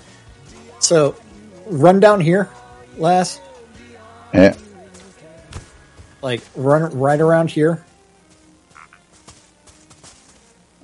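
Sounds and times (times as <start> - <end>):
speech: 0.8 - 3.5, 4.3 - 4.6, 6.2 - 7.9
frogs croaking: 8.7 - 9.2.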